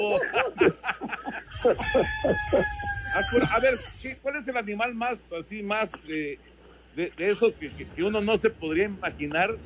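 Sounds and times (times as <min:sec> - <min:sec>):
speech: 0:00.0 - 0:00.8, 0:01.5 - 0:09.6
laughter: 0:00.0 - 0:02.6
rooster crowing in short harsh clucking bursts: 0:01.5 - 0:04.2.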